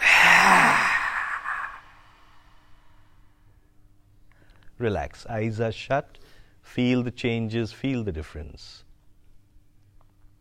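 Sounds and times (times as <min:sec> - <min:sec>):
deep sighing exhale in a relaxation workshop breathing sequence: 0:00.0 - 0:03.2
speech: 0:04.8 - 0:08.8.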